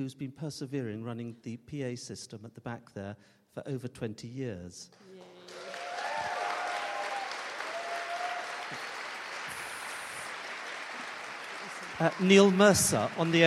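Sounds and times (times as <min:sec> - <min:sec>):
speech: 0:00.0 - 0:05.6, 0:12.0 - 0:13.4
sustained applause from a sizeable audience: 0:05.0 - 0:13.4
faint whistles or cheers: 0:05.5 - 0:10.7.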